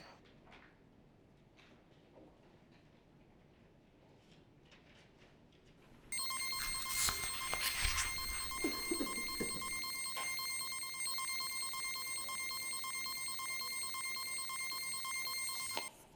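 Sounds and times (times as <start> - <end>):
machine running: 6.2 - 15.9.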